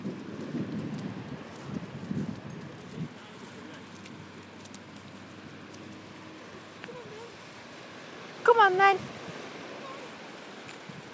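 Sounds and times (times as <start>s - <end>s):
wind blowing outdoors on a dog walk buffeting the microphone: 0.0s - 4.6s, 8.8s - 11.1s
speech: 8.6s - 9.1s.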